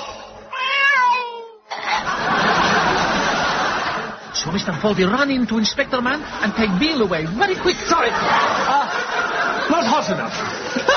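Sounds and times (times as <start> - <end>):
cat meowing: 0.5 - 1.6
laughter: 1.7 - 10.9
speech: 4.4 - 8.9, 9.7 - 10.9.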